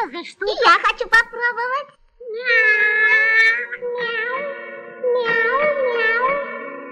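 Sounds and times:
speech: 0:00.0 - 0:04.2
person imitating cat meows: 0:02.3 - 0:06.7.

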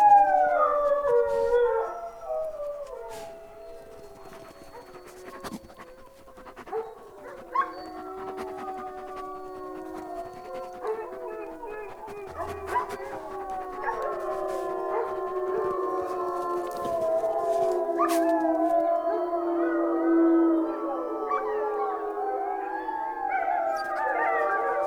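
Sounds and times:
wolves howling: 0:00.0 - 0:24.8
wolf yips: 0:02.4 - 0:18.8.

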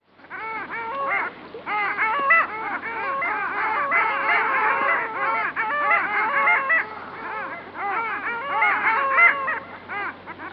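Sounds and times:
long-tailed duck chorus of nasal wavering calls: 0:00.2 - 0:10.5.

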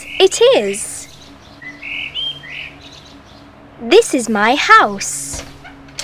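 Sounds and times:
parrot squawking and chirping: 0:00.0 - 0:03.4
speech: 0:00.2 - 0:00.9, 0:03.8 - 0:05.5.

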